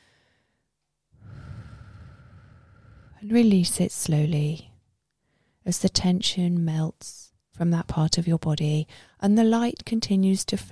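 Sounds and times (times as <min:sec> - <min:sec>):
deep inhaled breath during a guided relaxation meditation: 0:00.0 - 0:03.3
speech: 0:03.2 - 0:04.7, 0:05.7 - 0:10.7.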